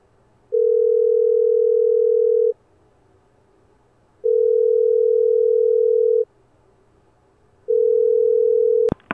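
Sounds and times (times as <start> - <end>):
phone line ringing through the earpiece: 0.5 - 2.5, 4.2 - 6.2, 7.7 - 8.9.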